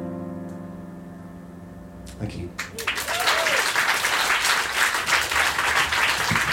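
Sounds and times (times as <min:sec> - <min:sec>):
audience clapping in a large room: 0:02.6 - 0:06.5.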